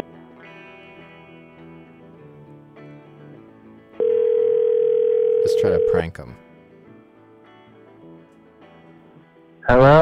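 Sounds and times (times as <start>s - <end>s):
telephone ringing tone on a line calling a number inside Alaska: 4.0s - 6.1s
speech: 5.6s - 6.5s, 9.7s - 10.0s.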